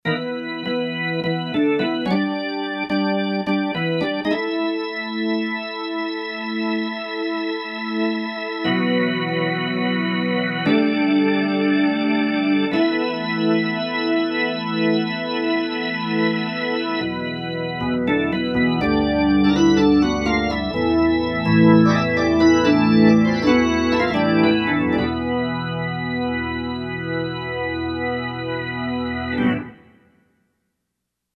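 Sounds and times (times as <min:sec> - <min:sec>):
organ patch on a Roland SC-880 synthesizer: 0:00.0 - 0:30.2.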